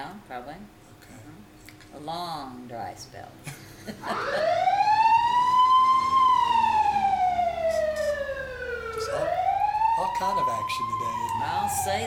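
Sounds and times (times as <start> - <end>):
speech: 0.0 - 4.7, 10.2 - 12.0
laughter: 3.5 - 5.0
emergency vehicle siren wailing: 4.0 - 12.0
faint road rumble: 4.2 - 12.0.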